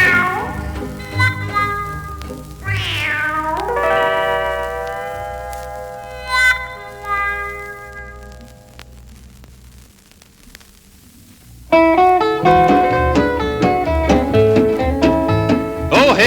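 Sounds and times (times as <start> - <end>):
cat meowing: 0.0 - 4.1
sustained instrumental music: 0.0 - 8.5, 11.7 - 16.2.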